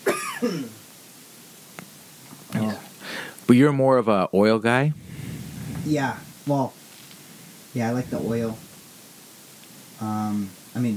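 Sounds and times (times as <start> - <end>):
cough directly into the microphone: 0.0 - 0.8
speech: 0.4 - 0.8, 3.5 - 5.0, 5.9 - 6.8, 7.7 - 8.7, 10.0 - 10.9.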